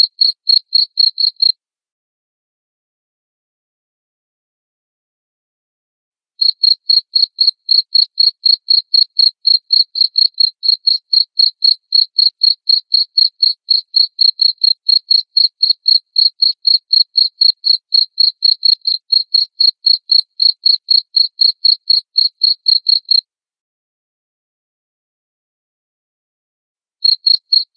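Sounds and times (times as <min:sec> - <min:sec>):
cricket chirping: 0:00.0 - 0:01.5, 0:06.4 - 0:23.2, 0:27.0 - 0:27.7.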